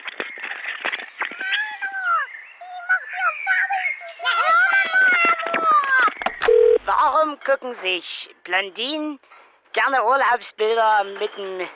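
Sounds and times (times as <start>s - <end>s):
several birds in the Mansfelder Land singing through a telephone: 0.2s - 7.1s
speech: 7.0s - 11.7s.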